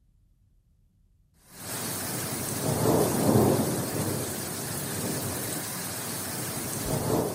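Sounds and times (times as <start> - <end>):
heavy rain pouring during a lightning storm in the Basque Country: 1.4 - 7.3
low rolling thunder during a lightning storm in the Basque Country: 1.6 - 7.3.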